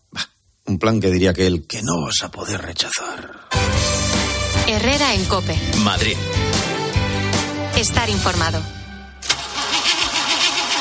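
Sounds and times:
speech: 0.7s - 6.6s, 7.8s - 8.8s
car engine with battery problems cranking, starter grinding: 9.2s - 10.7s.

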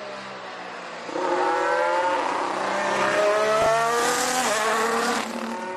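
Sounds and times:
Formula 1 race car engine screaming through gear changes: 1.1s - 5.6s.

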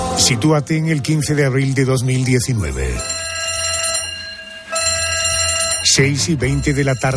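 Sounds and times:
speech: 0.2s - 3.2s, 5.9s - 7.1s
fire alarm bell ringing at Notre Dame in Paris: 3.0s - 7.1s.

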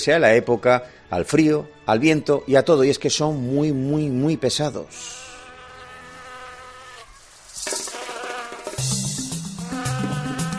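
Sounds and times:
speech: 0.0s - 5.2s
mosquito buzzing with whining drone: 4.9s - 10.5s.

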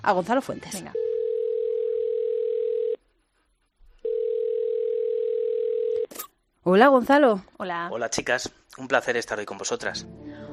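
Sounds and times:
speech: 0.0s - 1.0s, 6.6s - 10.2s
telephone ringback tones of an outgoing call: 0.9s - 3.0s, 4.0s - 6.1s.

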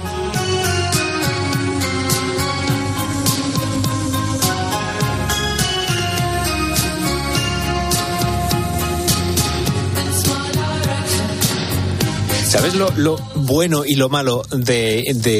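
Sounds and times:
slow 1980s-style pop song with drum beat and layered instruments: 0.0s - 15.3s
speech: 12.6s - 15.3s.

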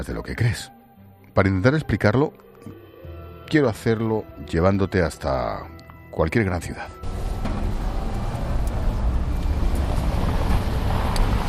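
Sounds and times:
speech: 0.0s - 0.8s, 1.4s - 2.8s, 3.5s - 7.1s
bus, car and scooter engines droning: 7.0s - 11.4s
dense low rumble of traffic on a city street: 7.0s - 11.4s.

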